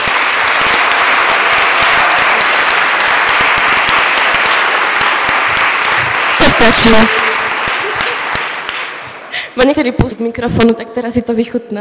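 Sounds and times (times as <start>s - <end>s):
loud sustained applause from a large audience: 0.0s - 9.4s
speech: 6.6s - 7.2s, 9.6s - 11.7s.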